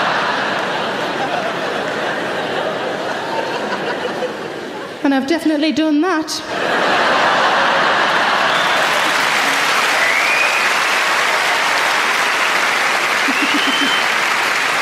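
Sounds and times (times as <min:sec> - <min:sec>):
large audience applauding: 0:00.0 - 0:03.2, 0:07.5 - 0:14.8
people laughing: 0:00.0 - 0:05.0, 0:06.4 - 0:10.3, 0:11.1 - 0:14.8
speech: 0:05.0 - 0:07.1.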